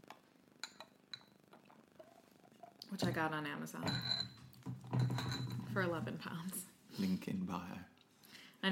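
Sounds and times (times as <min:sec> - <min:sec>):
glasses clinking: 0:00.6 - 0:03.2, 0:03.8 - 0:06.0
speech: 0:02.9 - 0:04.2, 0:05.1 - 0:07.9.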